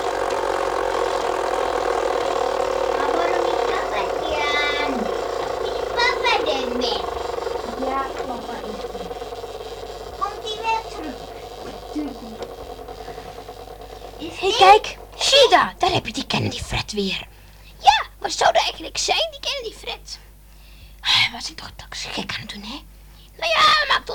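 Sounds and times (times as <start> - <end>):
car engine idling in a parking space: 0.0 - 17.8
speech: 14.7 - 17.3, 18.2 - 20.2, 21.3 - 24.1.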